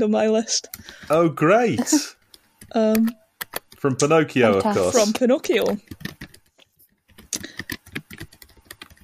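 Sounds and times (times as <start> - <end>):
speech: 0.0 - 3.2, 3.8 - 6.2
typing on a computer keyboard: 2.3 - 3.8, 5.5 - 9.0.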